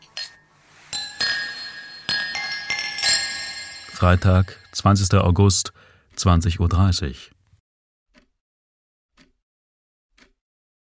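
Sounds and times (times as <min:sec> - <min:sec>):
glasses clinking together in a toast: 0:00.0 - 0:04.9
speech: 0:04.0 - 0:07.4.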